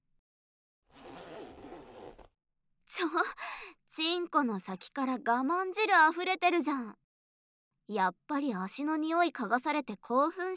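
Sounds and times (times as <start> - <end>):
trouser zipper being pulled down: 0.9 - 2.4
speech: 2.9 - 7.0, 7.9 - 10.5.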